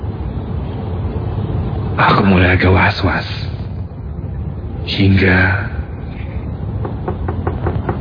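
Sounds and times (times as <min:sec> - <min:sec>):
loud continuous low rumble: 0:00.0 - 0:07.9
speech: 0:02.0 - 0:03.4, 0:04.9 - 0:05.8
knocking on a door: 0:06.8 - 0:07.9.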